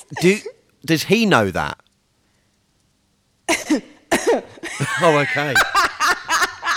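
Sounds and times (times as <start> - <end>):
speech: 0.1 - 1.8, 5.0 - 5.8
short coughs used as a yes/no code signal: 3.5 - 4.5
laughter: 4.5 - 6.7.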